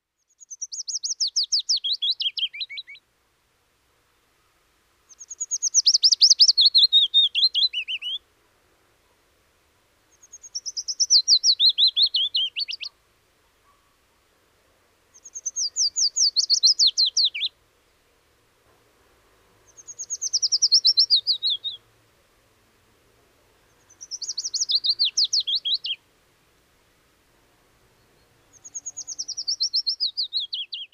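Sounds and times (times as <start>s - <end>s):
willow warbler singing descending warbled phrases: 0.2s - 3.0s, 5.1s - 8.2s, 10.1s - 12.9s, 15.1s - 17.5s, 19.7s - 21.8s, 23.7s - 26.0s, 28.0s - 30.9s.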